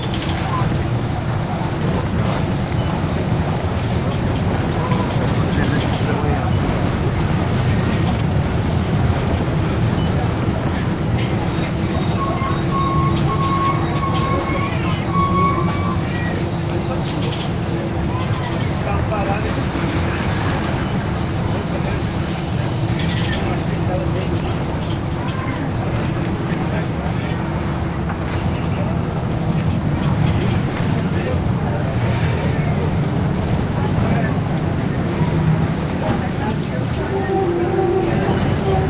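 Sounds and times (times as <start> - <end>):
city bus engine drone: 0.0 - 38.8
road rumble under a city bus: 0.0 - 38.8
voices on a city bus: 0.0 - 38.8
brief higher squeal on a city bus: 11.5 - 17.8.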